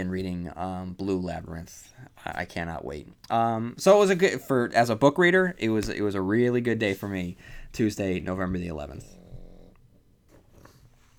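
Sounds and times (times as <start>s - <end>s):
speech: 0.0s - 9.2s
dog snoring: 8.9s - 10.1s.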